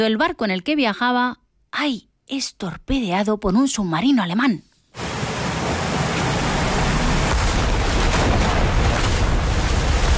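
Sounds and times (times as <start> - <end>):
speech: 0.0 - 5.1
ocean waves crashing: 5.0 - 10.1.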